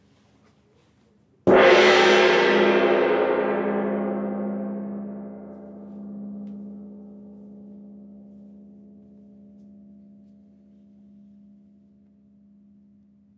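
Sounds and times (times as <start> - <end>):
small single gong strike vibrating, middle right: 1.5 - 10.2.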